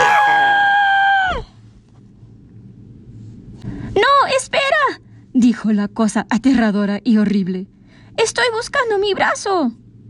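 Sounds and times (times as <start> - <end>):
group of four in a dark cave screaming in fright: 0.0 - 1.2
speech: 5.4 - 9.8.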